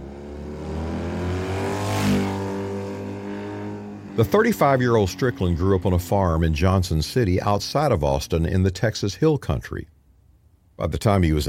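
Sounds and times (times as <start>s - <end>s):
BMW motorcycle engine revving and accelerating past: 0.0s - 6.4s
speech: 4.2s - 9.9s, 10.8s - 11.4s.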